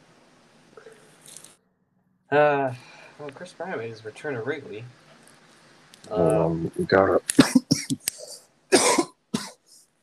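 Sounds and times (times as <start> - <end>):
speech: 2.3 - 5.0, 6.0 - 8.1
person with COVID coughing harshly: 7.3 - 9.7.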